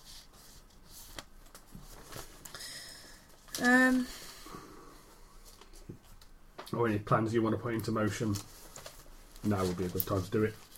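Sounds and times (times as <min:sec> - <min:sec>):
paper sheets rustling and shuffling: 0:00.0 - 0:02.6, 0:07.6 - 0:10.7
speech: 0:03.6 - 0:04.2, 0:06.8 - 0:08.5, 0:09.4 - 0:10.6.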